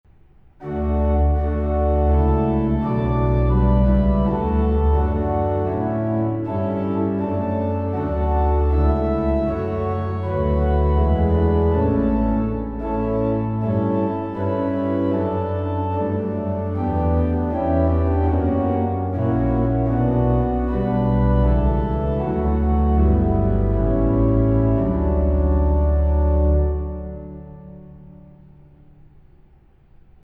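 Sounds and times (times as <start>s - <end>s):
organ playing hymns: 0.6s - 28.4s.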